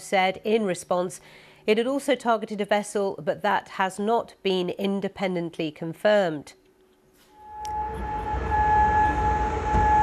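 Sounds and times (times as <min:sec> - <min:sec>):
speech: 0:00.1 - 0:06.6
air raid siren wailing across Kuwait City: 0:07.3 - 0:10.0
deep rising rumble of noise: 0:07.4 - 0:10.0.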